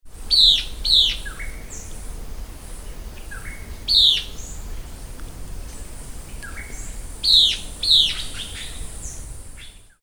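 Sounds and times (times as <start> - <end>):
Lathrotriccus euleri: 0.3 - 2.0, 2.8 - 5.1, 5.7 - 10.0.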